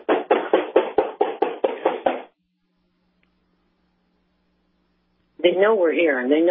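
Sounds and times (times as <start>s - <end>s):
firm knocking on a back door: 0.0s - 2.4s
speech: 5.4s - 6.4s.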